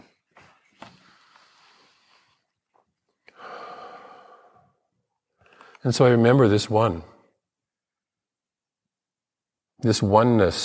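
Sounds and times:
person taking a slow breath before prayer: 0:00.8 - 0:02.7, 0:03.3 - 0:05.8
speech: 0:05.8 - 0:07.1, 0:09.8 - 0:10.6.

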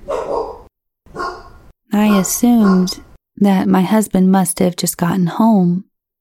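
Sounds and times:
dog barking sharply: 0:00.0 - 0:03.1
speech: 0:02.2 - 0:05.9.

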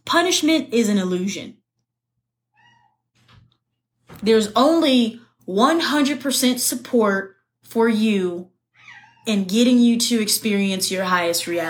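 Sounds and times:
speech: 0:00.1 - 0:01.6, 0:04.2 - 0:08.5, 0:09.2 - 0:11.6
cat meowing outside the room: 0:02.5 - 0:03.0, 0:08.8 - 0:09.3.

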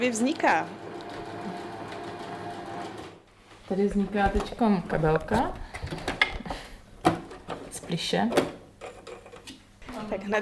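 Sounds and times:
speech: 0:00.0 - 0:00.8, 0:03.7 - 0:06.1, 0:07.9 - 0:08.6, 0:10.1 - 0:10.3
sewing machine running: 0:00.0 - 0:03.2.

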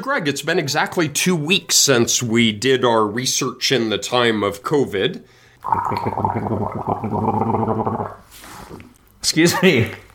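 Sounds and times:
speech: 0:00.0 - 0:10.0
person gargling liquid: 0:05.6 - 0:08.2.

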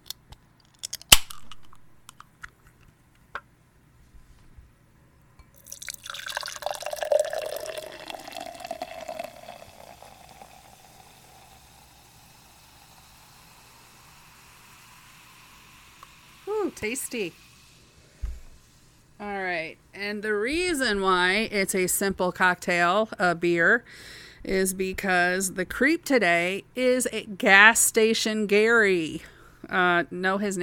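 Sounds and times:
beer fizzing as it is poured into a glass: 0:05.4 - 0:17.8
gas-station beer can or bottle opening clicks: 0:16.0 - 0:16.2
speech: 0:16.8 - 0:17.4, 0:19.6 - 0:30.6.

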